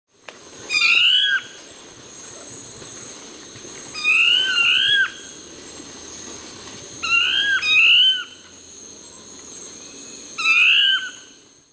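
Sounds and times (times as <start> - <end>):
dusky thrush voice: 0.7 - 1.8, 3.9 - 5.5, 7.0 - 8.6, 10.0 - 11.4.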